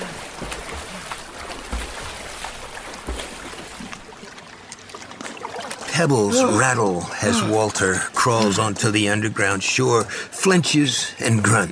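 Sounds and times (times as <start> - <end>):
man swimming fast and splashing in water toward an underground shore: 0.0 - 6.7
speech: 6.0 - 11.7.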